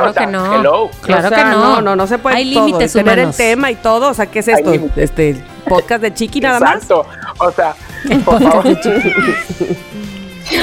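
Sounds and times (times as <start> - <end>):
speech: 0.0 - 10.6
laughter: 7.8 - 10.6
cat meowing in a drawn-out wavering yowl: 8.5 - 9.8.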